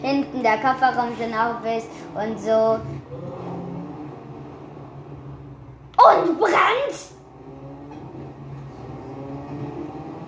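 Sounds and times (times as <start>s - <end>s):
speech: 0.0s - 3.3s, 6.0s - 7.2s
damaged old car engine revving in a driving video game: 0.0s - 10.2s.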